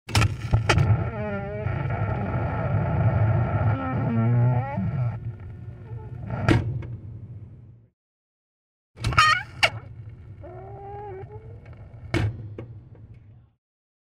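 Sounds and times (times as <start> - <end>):
metal door creaking: 0.1 - 5.2, 9.0 - 12.4.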